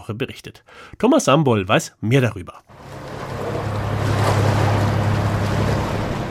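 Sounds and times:
speech: 0.1s - 3.0s
small wooden motorboat engine drone on the North Sea: 2.7s - 6.2s
splashing water of the North Sea: 2.7s - 6.2s.

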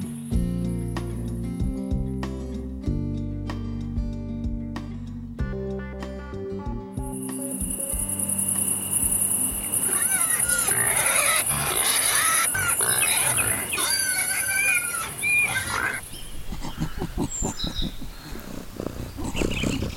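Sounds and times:
melodic musical passage with deep bass notes and plucked accents: 0.0s - 9.8s
cricket chirping: 7.0s - 19.9s
mixed animal calls: 9.6s - 19.9s
pig grunting and snorting: 10.1s - 19.9s.

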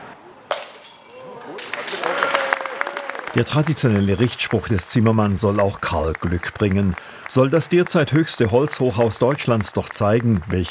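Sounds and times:
scattering tinkling wine glass shards: 0.5s - 1.5s
wine glass thrown and shattering at a carpenter's topping-out ceremony in Germany: 0.5s - 1.6s
speech: 3.4s - 10.7s.

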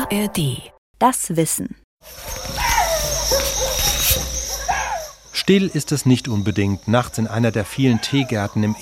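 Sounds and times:
speech: 0.1s - 2.3s, 5.5s - 8.8s
night insects chirring: 2.0s - 8.8s
dogs barking and yelping at night: 2.1s - 8.8s.

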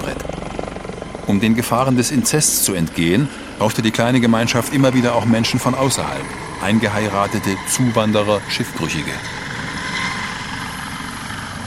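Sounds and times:
helicopter flying overhead with rotor thudding and engine roar: 0.0s - 11.6s
speech: 1.3s - 9.4s.

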